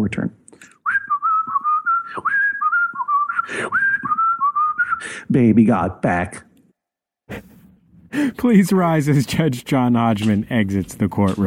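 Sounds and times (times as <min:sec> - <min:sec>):
person whistling a tune with sliding pitches: 0:00.8 - 0:05.1
short breaths between whistled phrases: 0:03.3 - 0:04.0, 0:04.8 - 0:05.3, 0:07.3 - 0:08.4
speech: 0:05.3 - 0:06.5, 0:08.4 - 0:11.4.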